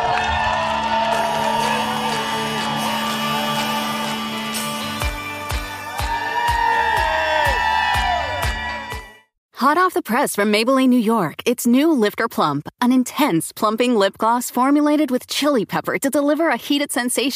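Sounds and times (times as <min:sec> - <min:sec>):
loud outdoor crowd cheering and whooping: 0:00.0 - 0:09.2
speech: 0:09.6 - 0:17.3.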